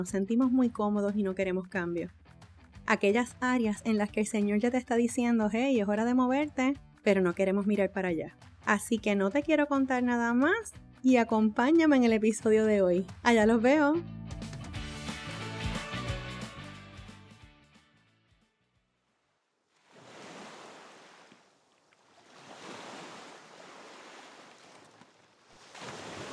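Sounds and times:
speech: 0:00.0 - 0:02.2, 0:02.9 - 0:14.4
music: 0:00.0 - 0:18.9
ocean waves rolling in: 0:19.7 - 0:26.3.

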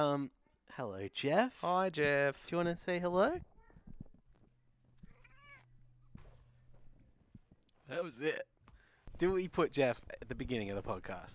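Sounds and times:
speech: 0:00.0 - 0:03.5, 0:07.9 - 0:08.5, 0:09.2 - 0:11.3
drawn-out cat meow: 0:05.0 - 0:05.8.

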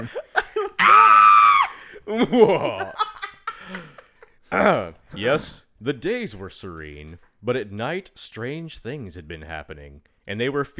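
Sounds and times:
speech: 0:00.0 - 0:00.2, 0:02.1 - 0:03.0, 0:04.5 - 0:10.7
person imitating a goat scream: 0:00.8 - 0:01.7
laughter: 0:02.1 - 0:04.4.

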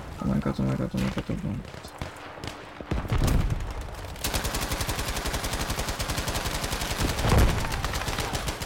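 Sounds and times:
speech: 0:00.2 - 0:02.0
rapid automatic gunfire in a video game: 0:01.7 - 0:08.6.

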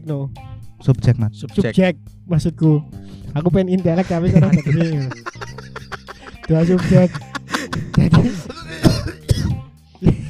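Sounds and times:
speech: 0:00.0 - 0:05.6, 0:06.5 - 0:07.3, 0:08.0 - 0:08.5
laughter: 0:04.0 - 0:09.2
sharp coughs: 0:05.9 - 0:09.7.

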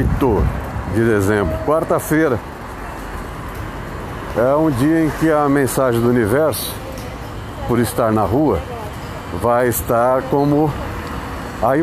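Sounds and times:
speech: 0:00.0 - 0:02.5, 0:04.4 - 0:06.8, 0:07.7 - 0:08.7, 0:09.3 - 0:10.9, 0:11.6 - 0:11.8
street traffic rumbling: 0:00.0 - 0:11.8.

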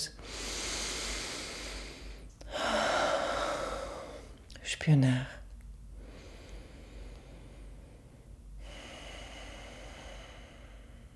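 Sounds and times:
person breathing slowly in and out during a guided morning stretching routine: 0:00.2 - 0:04.4, 0:06.0 - 0:11.1
speech: 0:04.8 - 0:05.4.

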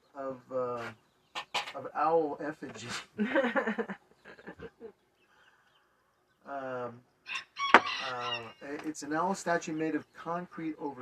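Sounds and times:
speech: 0:00.2 - 0:01.0, 0:02.0 - 0:04.0, 0:09.0 - 0:11.0
noisy birds squawking: 0:00.2 - 0:02.2, 0:04.1 - 0:11.0
laughter: 0:02.8 - 0:05.0
rooster crowing: 0:07.3 - 0:08.7.

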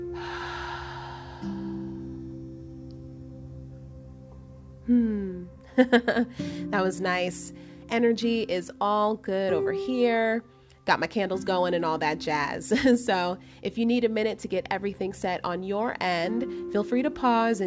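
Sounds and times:
group taking a deep breath: 0:00.2 - 0:02.3
speech: 0:05.8 - 0:17.6.

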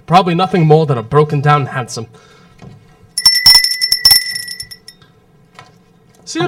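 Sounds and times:
speech: 0:00.1 - 0:02.8, 0:06.3 - 0:06.4
doorbell ringing in a rattling trill: 0:03.2 - 0:05.0.

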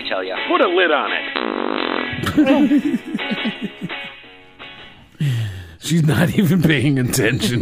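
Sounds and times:
speech: 0:00.1 - 0:03.8, 0:05.9 - 0:07.6
long sputtering fart: 0:01.2 - 0:02.8
laughter: 0:02.2 - 0:04.1.

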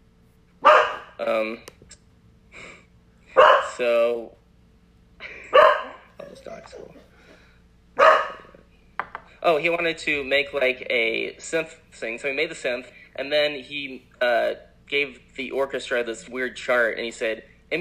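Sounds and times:
male pet dog barking: 0:00.6 - 0:01.2, 0:03.4 - 0:03.8, 0:05.5 - 0:06.1, 0:08.0 - 0:08.5
speech: 0:01.2 - 0:02.0, 0:03.8 - 0:04.4, 0:06.4 - 0:07.1, 0:09.4 - 0:17.7.

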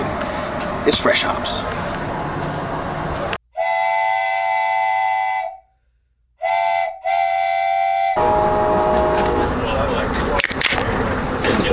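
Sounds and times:
passenger train rumbling along the rails: 0:00.0 - 0:03.4, 0:08.2 - 0:11.7
speech: 0:00.8 - 0:01.9
passenger train horn blasts: 0:03.6 - 0:05.6, 0:06.4 - 0:10.0.

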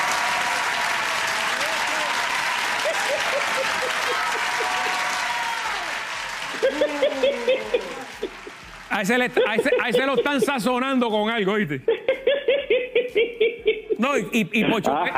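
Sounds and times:
crowd applauding: 0:00.0 - 0:11.5
laughter: 0:02.8 - 0:05.2, 0:06.4 - 0:11.0, 0:11.8 - 0:15.1
speech: 0:03.6 - 0:05.1, 0:06.6 - 0:08.4, 0:09.0 - 0:12.1, 0:13.1 - 0:15.1.

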